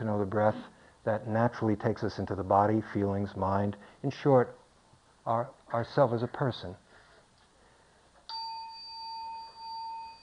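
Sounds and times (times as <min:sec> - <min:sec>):
speech: 0:00.1 - 0:04.6, 0:05.2 - 0:06.8
meditation bell struck and ringing: 0:08.3 - 0:10.2.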